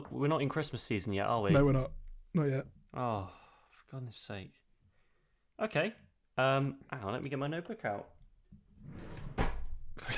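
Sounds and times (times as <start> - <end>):
speech: 0.0 - 4.6, 5.6 - 8.2
drawer sliding open: 8.8 - 9.7.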